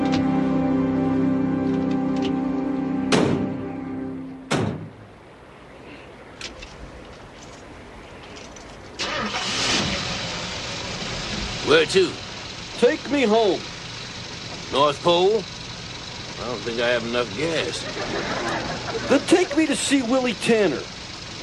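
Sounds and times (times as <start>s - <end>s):
truck engine humming: 0.0s - 5.7s, 6.9s - 21.4s
heavy door-like thunks: 3.1s - 3.6s, 4.5s - 5.0s
speech: 11.8s - 12.2s, 13.1s - 13.7s, 14.7s - 15.5s, 16.4s - 21.0s
laughter: 17.3s - 20.5s.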